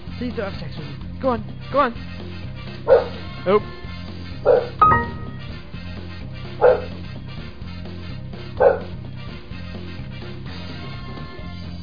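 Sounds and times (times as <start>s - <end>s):
speech: 0.2s - 3.8s, 4.4s - 5.2s
dog barking: 2.9s - 3.3s, 4.4s - 4.8s, 6.6s - 7.0s, 8.6s - 9.0s.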